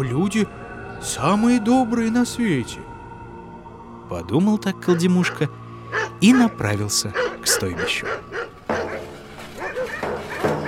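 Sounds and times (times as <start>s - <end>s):
speech: 0.0s - 2.9s, 4.1s - 5.6s, 6.2s - 8.3s
several dogs barking and yelping: 4.8s - 10.6s.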